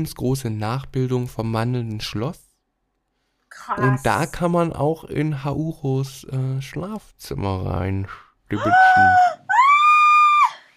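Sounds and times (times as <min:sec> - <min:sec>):
speech: 0:00.0 - 0:02.5, 0:03.5 - 0:09.5
person screaming in excitement: 0:08.5 - 0:10.6.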